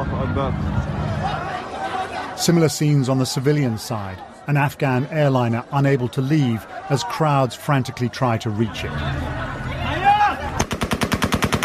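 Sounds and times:
noise: 0.0 - 11.6
speech: 0.2 - 1.0, 2.4 - 9.4
rapid gunshots outside airport gates: 10.6 - 11.6.

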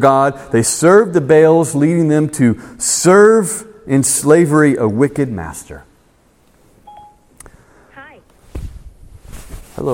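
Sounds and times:
speech: 0.0 - 5.9, 9.8 - 9.9
short electronic beep from a mobile phone: 6.8 - 7.3
soft thump of handling: 8.5 - 8.9.

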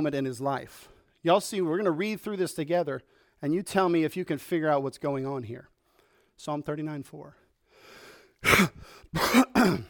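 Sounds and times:
speech: 0.0 - 5.7, 6.4 - 7.4, 8.4 - 9.8
harsh rasping coughs from a lingering cough: 8.4 - 9.8.

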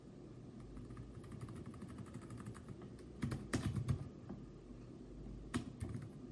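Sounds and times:
typing on a computer keyboard: 0.6 - 4.1, 5.5 - 6.2.

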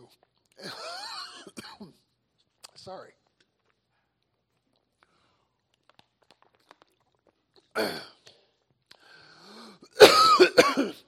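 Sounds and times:
speech: 0.1 - 0.9, 2.8 - 3.2, 7.8 - 8.1
person choking and coughing after swallowing a flying insect: 0.6 - 2.1, 7.8 - 8.2, 9.9 - 11.0.

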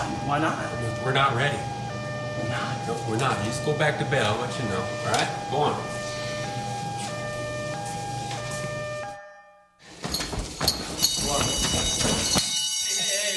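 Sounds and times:
electronic alarm at a fire station: 0.0 - 9.8, 11.1 - 13.3
speech: 0.3 - 1.8, 2.4 - 6.0
clattering movement and bustle: 9.9 - 12.5.

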